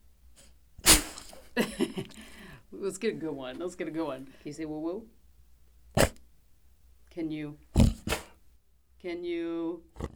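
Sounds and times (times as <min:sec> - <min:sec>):
dog sneezing on command: 0:00.8 - 0:01.6, 0:06.0 - 0:06.2, 0:07.8 - 0:08.4
speech: 0:02.8 - 0:05.2, 0:07.2 - 0:07.8, 0:09.0 - 0:10.1.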